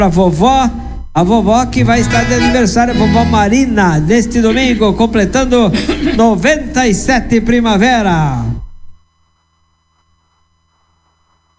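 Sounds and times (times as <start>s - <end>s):
speech: 0.0s - 8.5s
mobile phone ringtone sustained electronic tone: 1.8s - 3.5s.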